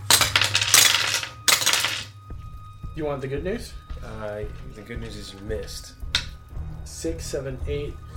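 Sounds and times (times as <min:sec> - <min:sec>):
dice clattering and rattling across a hard tabletop: 0:00.1 - 0:02.1
speech: 0:03.0 - 0:06.0, 0:07.0 - 0:08.1.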